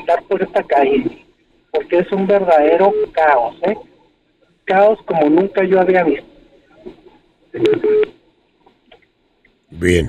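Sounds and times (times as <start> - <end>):
low noise: 0.0 - 10.0
speech: 0.1 - 3.9, 4.7 - 7.0, 7.6 - 8.1, 9.7 - 10.0
two short electronic telephone tones signalling an incoming call on a radio phone-in line: 7.6 - 8.1.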